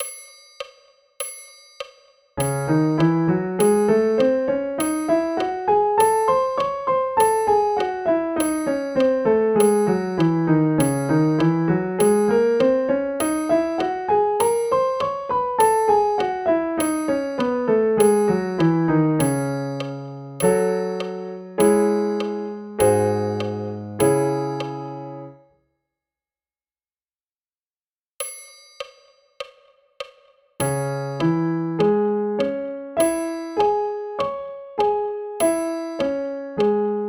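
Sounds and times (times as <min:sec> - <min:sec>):
C minor scale and arpeggio: 0:02.4 - 0:25.4, 0:30.6 - 0:37.0.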